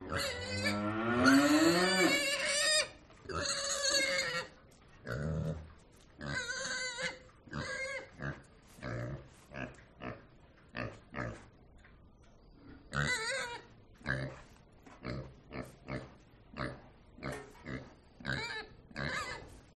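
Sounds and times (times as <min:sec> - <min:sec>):
pig squealing on an urban farm: 0:00.0 - 0:05.6, 0:06.2 - 0:09.0, 0:12.9 - 0:13.7, 0:18.2 - 0:19.5
cow on an urban farm: 0:00.0 - 0:11.5, 0:12.7 - 0:19.7.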